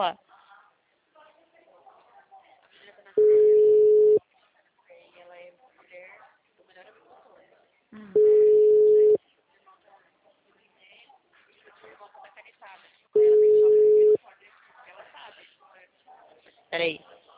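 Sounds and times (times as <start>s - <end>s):
speech: 0.0s - 0.3s, 16.7s - 17.1s
telephone ringback tone while calling someone: 3.2s - 4.2s, 8.2s - 9.2s, 13.2s - 14.2s.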